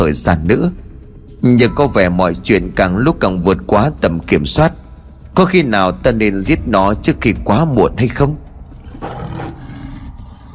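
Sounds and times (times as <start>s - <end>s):
speech: 0.0s - 4.8s, 5.4s - 8.4s
strange creature roaring in a dungeon: 8.8s - 10.5s.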